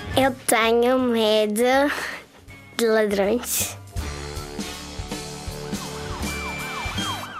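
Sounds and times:
speech: 0.2 - 2.1, 2.8 - 3.8
police car siren wailing in rising and falling sweeps: 5.6 - 7.3.

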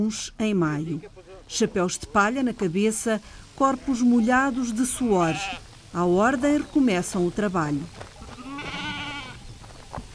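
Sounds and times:
speech: 0.0 - 8.8
sheep bleating while caught and sheared on a platform: 4.8 - 5.6, 8.2 - 9.4
quiet shuffling: 5.6 - 10.1.

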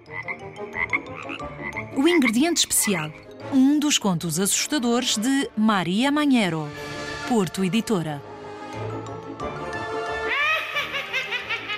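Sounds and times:
chorus of frogs croaking: 0.0 - 3.4
speech: 2.0 - 9.6
laughter: 10.3 - 11.7.

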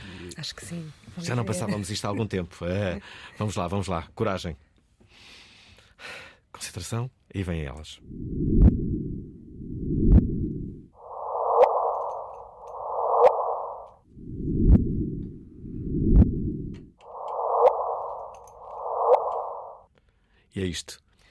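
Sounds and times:
speech: 0.3 - 5.4, 6.0 - 9.2, 20.6 - 21.0
sonified gravitational-wave recording with deep rumbling whooshes: 8.0 - 19.8
sonified gravitational-wave recording with higher hollow whooshes: 11.0 - 19.8.

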